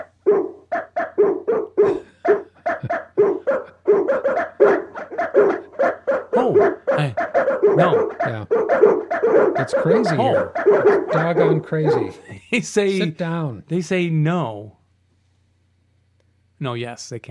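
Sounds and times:
chorus of dogs barking outside the window: 0:00.0 - 0:13.0
speech: 0:07.8 - 0:14.6, 0:16.6 - 0:17.2.

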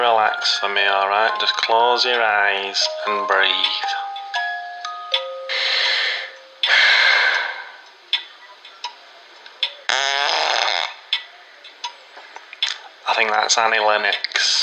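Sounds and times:
speech: 0:00.0 - 0:04.0, 0:13.2 - 0:14.6
sharp ticking clicks: 0:00.0 - 0:14.4
short chime: 0:02.6 - 0:06.7
buzzy fart: 0:09.9 - 0:11.0.

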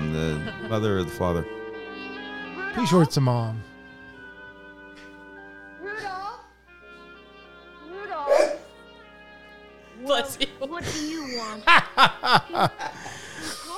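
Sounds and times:
laughter: 0:00.0 - 0:01.2, 0:10.8 - 0:13.7
speech: 0:00.3 - 0:01.6, 0:02.8 - 0:03.7, 0:10.1 - 0:13.2
person stifling a sneeze: 0:08.3 - 0:08.7.

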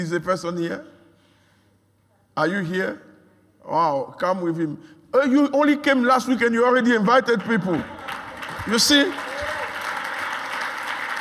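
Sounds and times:
speech: 0:00.0 - 0:01.0, 0:02.4 - 0:08.1, 0:08.7 - 0:09.2
congregation clapping in applause: 0:07.0 - 0:11.1.

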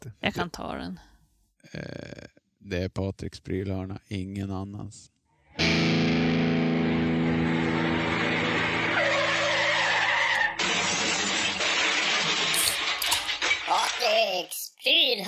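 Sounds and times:
speech: 0:00.2 - 0:01.1, 0:01.7 - 0:06.0, 0:14.4 - 0:15.2
truck tyres skidding: 0:07.1 - 0:14.0.

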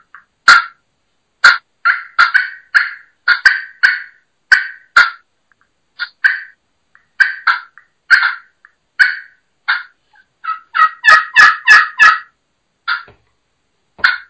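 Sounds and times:
turkey clucks on pot-and-peg friction call: 0:00.0 - 0:00.8, 0:01.4 - 0:13.2, 0:14.0 - 0:14.2.

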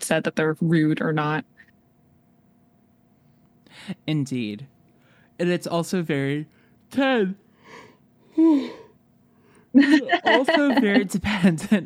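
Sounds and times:
speech: 0:00.1 - 0:01.6, 0:03.8 - 0:04.8, 0:05.4 - 0:07.8, 0:08.4 - 0:08.8, 0:09.7 - 0:11.8
single short yawn with a breathy voiced sigh: 0:08.4 - 0:08.9
laughter: 0:09.8 - 0:11.8.

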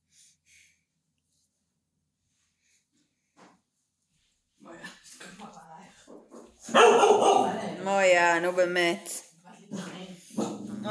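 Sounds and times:
dog barking: 0:06.6 - 0:07.8
speech: 0:06.7 - 0:09.2.

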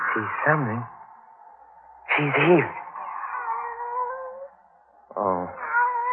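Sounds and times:
speech: 0:00.2 - 0:00.9, 0:02.2 - 0:02.8, 0:05.2 - 0:05.6
pet cat meowing: 0:03.1 - 0:04.5, 0:05.4 - 0:06.1.

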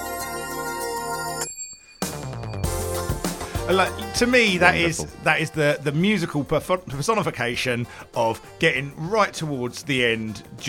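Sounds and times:
single bright bell ring in a music track: 0:00.3 - 0:05.0
dense busy music: 0:02.6 - 0:06.1
speech: 0:03.7 - 0:10.6.

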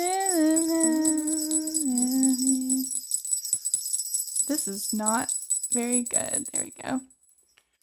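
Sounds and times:
sustained hummed tone: 0:00.0 - 0:03.0
small jingle bell shaking: 0:00.0 - 0:07.6
speech: 0:04.6 - 0:07.1.

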